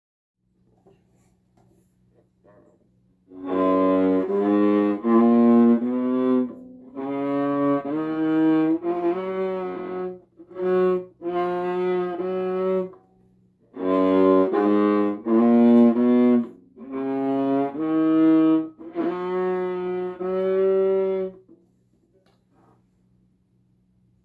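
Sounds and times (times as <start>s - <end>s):
violin playing an F2 major scale badly: 3.3s - 13.0s, 13.7s - 21.5s.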